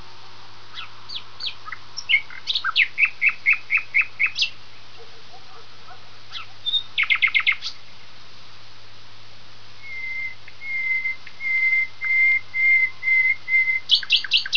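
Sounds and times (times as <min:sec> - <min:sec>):
common nightingale singing: 0:00.7 - 0:08.1, 0:09.8 - 0:14.5.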